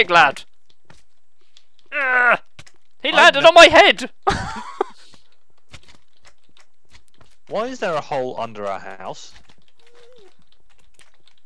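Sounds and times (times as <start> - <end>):
speech: 0.0 - 0.5, 1.9 - 2.4, 3.0 - 4.7, 7.5 - 9.4
rapid computer mouse clicking: 0.4 - 1.9, 2.5 - 3.0, 5.0 - 11.4.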